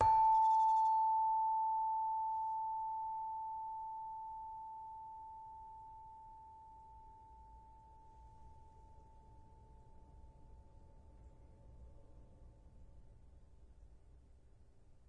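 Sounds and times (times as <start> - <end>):
Indonesian saron metallophone: 0.0 - 10.6.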